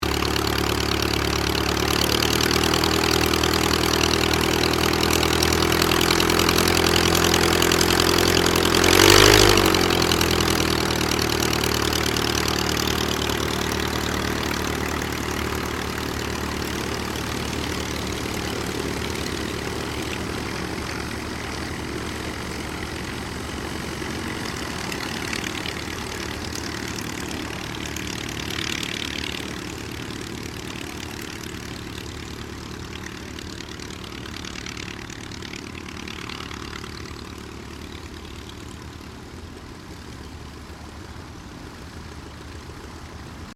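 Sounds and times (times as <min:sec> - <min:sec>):
Auster III aircraft taxiing: 0:00.0 - 0:43.5.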